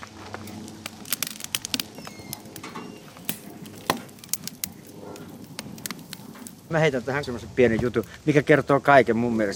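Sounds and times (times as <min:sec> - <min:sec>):
firewood being split for a grill: 0:00.5 - 0:06.8
speech: 0:06.7 - 0:09.5.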